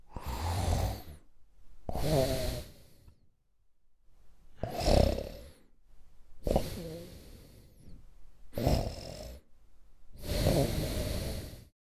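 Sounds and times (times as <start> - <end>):
adult man snoring: 0.1 - 1.3, 1.9 - 3.1, 4.6 - 5.7, 6.4 - 7.8, 8.5 - 9.5, 10.2 - 11.7.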